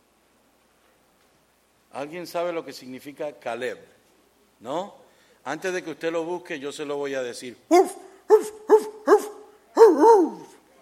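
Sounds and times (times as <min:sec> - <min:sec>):
speech: 0:02.0 - 0:04.0, 0:04.6 - 0:08.5
dog barking: 0:07.7 - 0:10.6.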